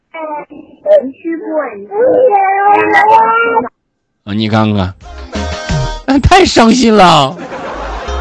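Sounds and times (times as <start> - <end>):
speech: 0.2 - 5.2, 6.1 - 7.5
cat wailing: 0.9 - 3.7
laughter: 6.6 - 8.1.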